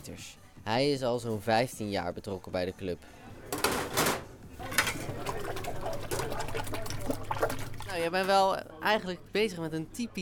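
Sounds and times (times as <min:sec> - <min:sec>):
speech: 0:00.0 - 0:03.2, 0:08.0 - 0:10.2
crockery clinking and clattering: 0:03.5 - 0:06.5
water sloshing and splashing while washing dishes by hand: 0:04.6 - 0:08.1.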